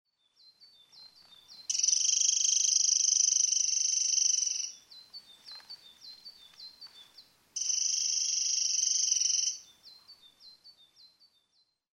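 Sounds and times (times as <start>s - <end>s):
Eurasian wren singing loud rapid high trills: 0.4s - 6.9s, 7.6s - 11.8s
Eurasian wren short sharp ticking notes: 1.6s - 7.0s, 7.6s - 10.1s.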